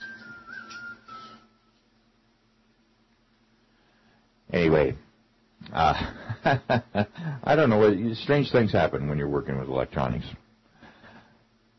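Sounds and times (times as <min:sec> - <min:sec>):
person whistling: 0:00.0 - 0:01.8
low background hum: 0:00.0 - 0:11.7
speech: 0:04.5 - 0:05.0, 0:05.7 - 0:10.4
laughter: 0:05.7 - 0:07.4.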